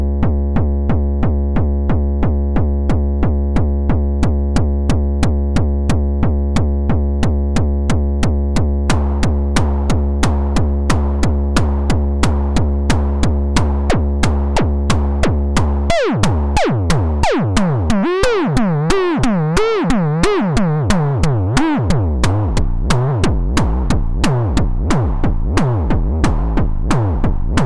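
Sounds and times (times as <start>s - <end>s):
hardcore drum machine beat: 0.2s - 27.6s.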